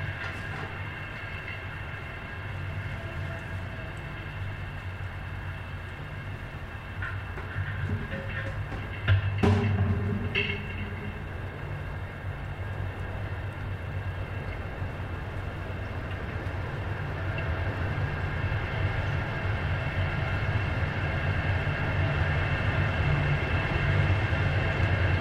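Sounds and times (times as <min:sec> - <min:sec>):
city sound walk played through a transducer and antique gasoline can: 0:00.0 - 0:25.1.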